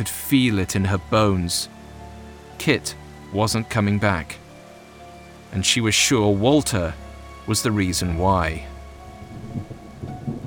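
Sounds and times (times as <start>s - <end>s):
speech: 0.0s - 1.8s, 2.6s - 4.4s, 5.5s - 8.7s
heavy rain pouring: 0.0s - 10.4s
low thunder rumbling in rolling swells: 9.1s - 10.4s.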